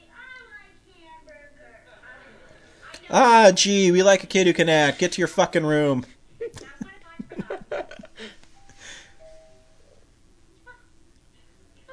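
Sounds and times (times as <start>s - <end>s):
speech: 3.1s - 6.2s
laughter: 6.4s - 8.4s
soft two-note doorbell chime: 8.6s - 10.0s.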